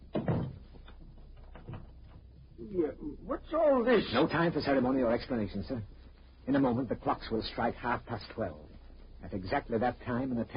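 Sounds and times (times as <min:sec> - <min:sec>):
door swinging shut with a soft thud: 0:00.1 - 0:00.8
speech: 0:02.7 - 0:10.5.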